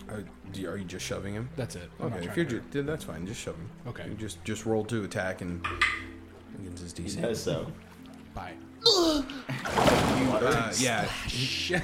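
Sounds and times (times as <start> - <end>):
speech: 0.1 - 11.8
big loud water splash: 9.6 - 10.6.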